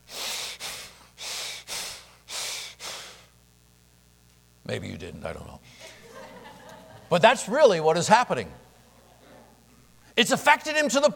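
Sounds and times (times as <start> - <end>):
heavy forceful breathing through the nose: 0.0 - 3.4
speech: 4.7 - 5.9, 7.1 - 8.6, 10.2 - 11.1
laughter: 5.8 - 7.2.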